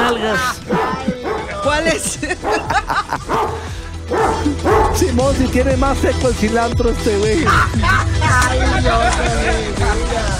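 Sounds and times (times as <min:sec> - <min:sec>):
laughter: 0:00.0 - 0:04.8, 0:07.3 - 0:10.3
speech: 0:00.2 - 0:00.8, 0:01.8 - 0:10.3
dog barking and yipping: 0:00.7 - 0:01.5, 0:02.4 - 0:05.0.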